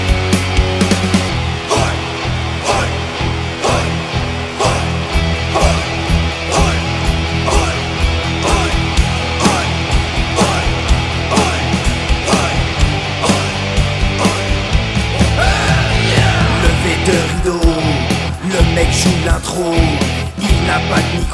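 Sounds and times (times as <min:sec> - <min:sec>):
steady rhythmic pulses: 0:00.0 - 0:20.9
dense concert crowd roaring and shouting: 0:00.0 - 0:21.3.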